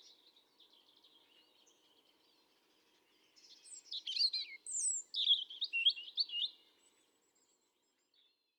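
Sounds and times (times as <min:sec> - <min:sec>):
European robin Erithacus rubecula singing: 0:03.7 - 0:06.6.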